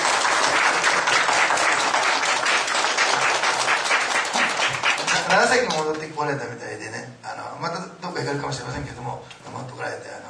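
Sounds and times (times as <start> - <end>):
large church audience applauding during a worship service: 0.0 - 6.1
speech: 5.4 - 7.0, 7.6 - 10.1.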